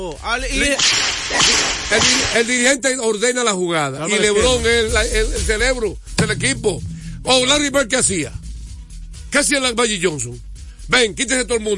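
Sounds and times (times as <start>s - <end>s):
speech: 0.0s - 8.4s, 9.3s - 11.7s
whip cracking: 0.6s - 2.5s.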